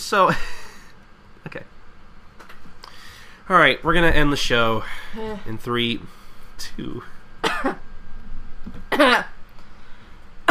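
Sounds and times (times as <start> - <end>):
speech: 0.1 - 0.6, 1.4 - 1.8, 3.5 - 7.9, 8.6 - 9.4
harsh coughs: 7.4 - 7.8.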